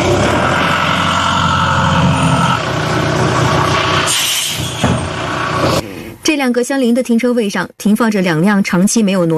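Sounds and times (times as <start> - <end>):
heavy tow truck engine rumbling while towing an abandoned car: 0.0 - 5.8
speech: 6.4 - 9.3.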